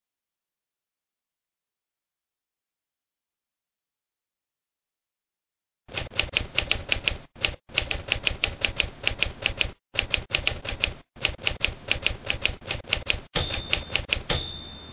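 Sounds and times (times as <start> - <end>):
typewriter typing: 5.9 - 14.8.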